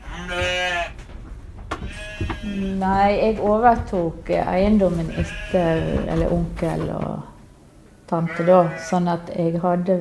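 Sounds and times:
Norwegian White sheep bleating: 0:00.0 - 0:01.0, 0:01.8 - 0:02.7, 0:05.0 - 0:06.4, 0:08.2 - 0:09.0
faint farmyard noise: 0:00.0 - 0:10.0
speech: 0:02.4 - 0:07.3, 0:08.1 - 0:10.0.

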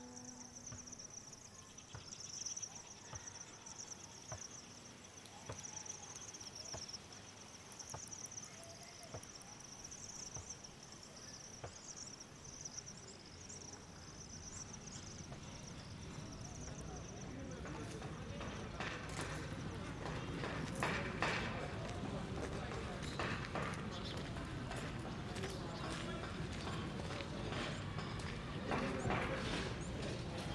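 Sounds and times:
steady high insect trill: 0:00.0 - 0:20.1
faint voices: 0:00.0 - 0:30.5.

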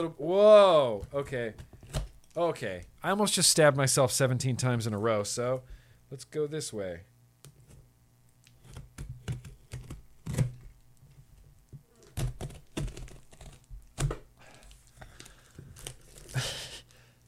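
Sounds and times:
speech: 0:00.0 - 0:01.7, 0:02.4 - 0:07.1
heavy layers of tape ripped off a package: 0:11.9 - 0:14.2, 0:15.7 - 0:16.4.

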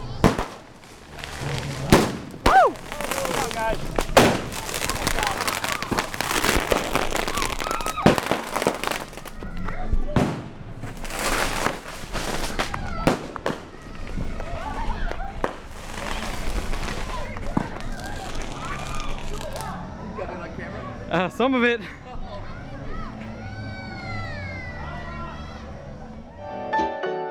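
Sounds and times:
fireworks launching and exploding: 0:00.0 - 0:19.8
people shouting and talking excitedly: 0:00.0 - 0:27.2
speech: 0:21.2 - 0:22.0.

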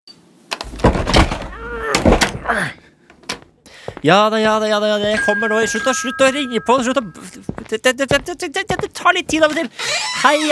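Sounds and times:
wooden cupboard door banging as it is forced shut: 0:00.7 - 0:02.4
speech: 0:02.5 - 0:02.8, 0:04.0 - 0:10.5.

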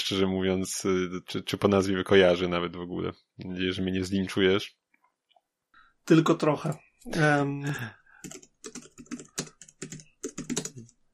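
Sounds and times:
speech: 0:00.1 - 0:04.8, 0:06.1 - 0:08.8
computer keyboard clicks from typing: 0:07.7 - 0:11.0.

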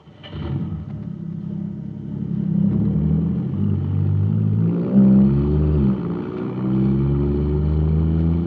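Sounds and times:
supercharged jet cycle engine roaring: 0:00.0 - 0:08.4.

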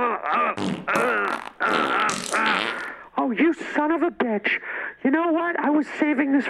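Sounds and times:
buzzy fart noises: 0:00.0 - 0:03.0
speech: 0:03.8 - 0:06.4.

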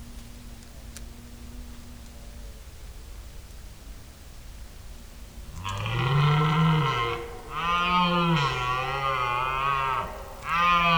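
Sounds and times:
wild male red deer rutting calls at night near Uppsala: 0:05.5 - 0:10.9.

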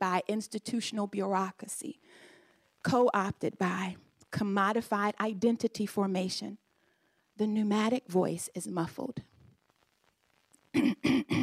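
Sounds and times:
speech: 0:00.1 - 0:06.6, 0:07.4 - 0:09.3, 0:10.8 - 0:11.4
person clearing throat: 0:10.7 - 0:11.4.

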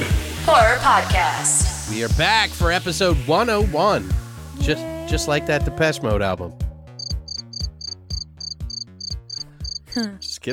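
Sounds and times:
speech: 0:00.5 - 0:06.6, 0:10.0 - 0:10.5
crickets chirping: 0:07.0 - 0:10.1.

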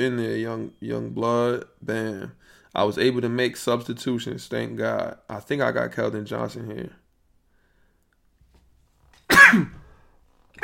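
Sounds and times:
speech: 0:00.0 - 0:07.0, 0:09.5 - 0:09.8
sneeze: 0:09.3 - 0:09.9.

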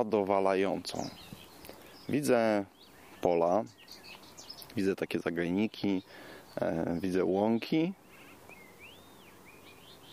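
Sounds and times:
speech: 0:00.0 - 0:01.3, 0:02.1 - 0:04.0, 0:04.7 - 0:08.0
faint birdsong over countryside with fields, meadows, copses and a little pond: 0:00.0 - 0:10.1
soft steady hiss: 0:00.0 - 0:10.1.

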